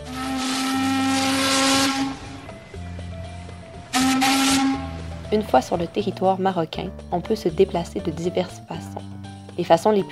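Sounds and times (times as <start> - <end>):
ship's horn blast with a hissing edge: 0.0 - 2.6, 3.8 - 5.3
steady low boat engine rumble: 0.0 - 9.7
speech: 5.3 - 8.9, 9.6 - 10.1.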